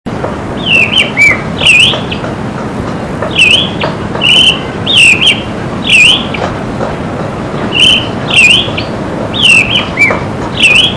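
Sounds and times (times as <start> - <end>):
thrush calling: 0.6 - 2.2, 3.3 - 6.5, 7.7 - 10.9.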